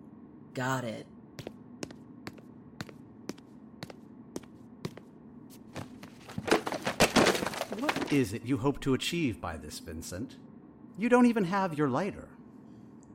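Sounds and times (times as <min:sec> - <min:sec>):
speech: 0:00.6 - 0:01.2, 0:07.8 - 0:12.4
books tossed onto the floor: 0:05.8 - 0:08.2.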